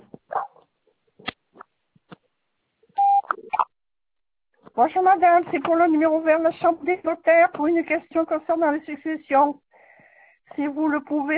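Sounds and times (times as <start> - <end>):
voicemail electronic beep: 3.0 - 3.7
speech: 4.8 - 9.6, 10.6 - 11.3.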